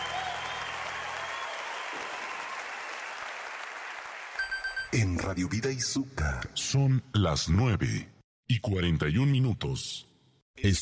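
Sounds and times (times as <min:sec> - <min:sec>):
audience applause: 0:00.0 - 0:04.8
speech: 0:04.9 - 0:10.8.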